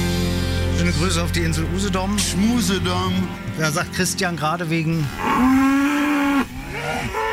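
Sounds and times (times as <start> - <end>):
speech: 0.8 - 5.8
cows escaped onto a road mooing: 4.9 - 7.3.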